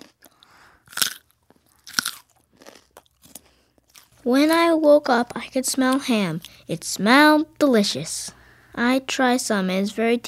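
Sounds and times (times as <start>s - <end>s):
carrots being bitten and chewed with crunching: 0.0s - 4.3s
speech: 4.2s - 10.2s.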